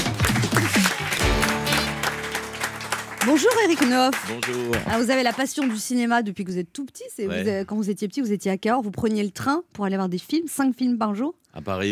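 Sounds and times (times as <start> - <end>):
music playing: 0.0 - 5.0
audience applause welcoming a guest: 0.0 - 5.9
speech: 3.3 - 11.9.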